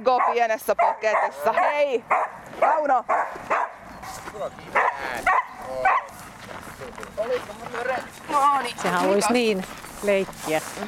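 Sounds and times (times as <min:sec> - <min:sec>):
speech: 0:00.0 - 0:10.8
small dog barking: 0:00.1 - 0:06.2.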